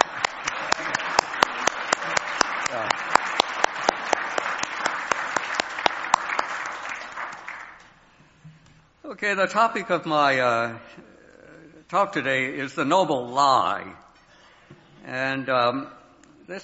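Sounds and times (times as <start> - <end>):
audience applause: 0.0 - 7.9
sharp hand claps: 0.0 - 7.9
speech: 9.2 - 11.1, 11.9 - 14.0, 15.1 - 16.6.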